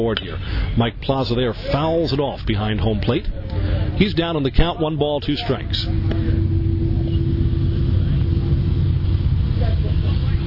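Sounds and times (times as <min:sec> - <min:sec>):
speech: 0:00.0 - 0:06.4
train rumbling past behind the ballpark: 0:03.6 - 0:10.4.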